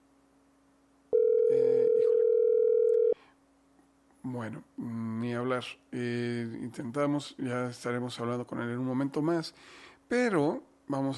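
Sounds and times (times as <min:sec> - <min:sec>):
steady telephone line tone: 0:01.1 - 0:03.2
speech: 0:04.3 - 0:11.1.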